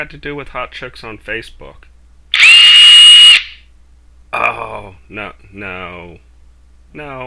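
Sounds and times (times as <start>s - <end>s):
speech: 0.0s - 1.9s, 5.1s - 6.3s, 6.9s - 7.2s
power drill whirring: 2.4s - 3.6s.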